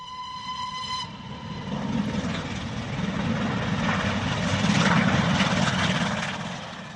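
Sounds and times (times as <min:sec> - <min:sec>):
steady harmonic tone: 0:00.0 - 0:04.4
train departing a station with a broad rumbling roar: 0:00.0 - 0:06.9.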